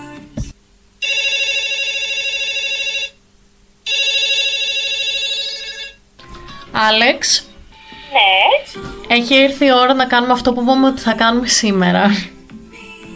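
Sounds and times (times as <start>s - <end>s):
telephone ringing with electronic trill: 1.0s - 3.2s, 3.8s - 6.0s
speech: 6.8s - 7.5s, 8.1s - 12.3s.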